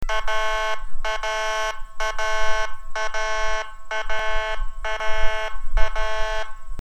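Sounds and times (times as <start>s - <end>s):
pulsed air horn: 0.0s - 6.7s
siren: 0.0s - 6.7s.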